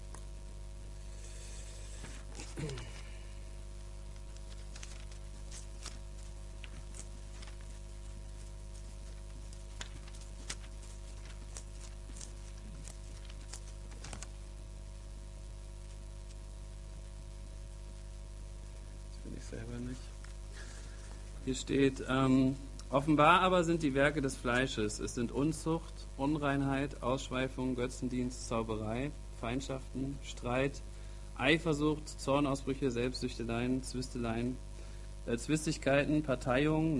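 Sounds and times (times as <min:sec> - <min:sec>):
steady low hum: 0:00.0 - 0:36.9
speech: 0:02.6 - 0:02.9, 0:19.4 - 0:20.2, 0:21.5 - 0:36.9
pages of a book being flipped through: 0:04.1 - 0:14.4, 0:15.8 - 0:16.4.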